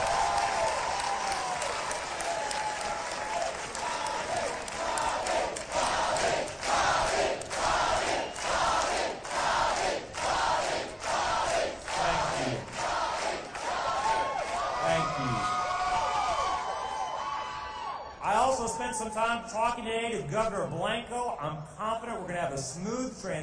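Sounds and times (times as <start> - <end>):
large crowd applauding: 0.0 - 18.1
speech: 19.4 - 23.4.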